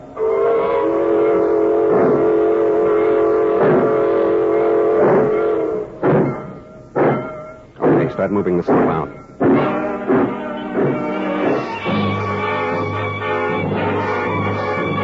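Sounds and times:
freight train horn blast: 0:00.0 - 0:06.0, 0:09.4 - 0:15.0
freight train pulling out with rumbling clatter: 0:00.0 - 0:15.0
speech: 0:08.2 - 0:09.2.

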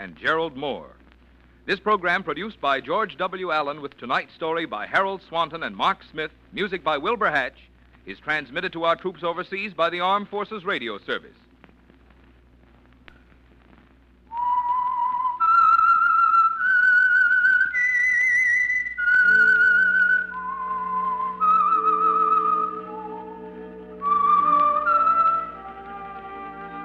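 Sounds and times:
speech: 0:00.0 - 0:01.0, 0:01.6 - 0:11.4
solo whistled radio program theme melody: 0:14.3 - 0:26.8
soft orchestral accompaniment: 0:19.0 - 0:26.8.

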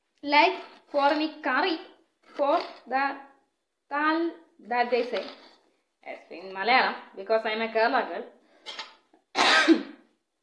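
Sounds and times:
speech: 0:00.2 - 0:03.3, 0:03.9 - 0:08.4
person coughing from spice smell: 0:09.4 - 0:10.1.

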